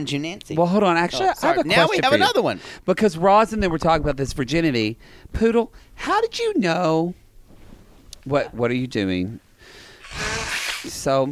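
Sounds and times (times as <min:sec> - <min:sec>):
speech: 0:00.0 - 0:07.2, 0:08.2 - 0:09.4, 0:10.1 - 0:11.3
nose blowing: 0:09.8 - 0:11.0.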